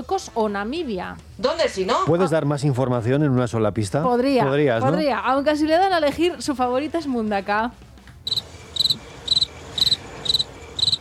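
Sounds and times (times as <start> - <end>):
speech: 0.0 - 8.4
cricket chirping loudly in Mundaka in the Basque Country: 8.3 - 10.9.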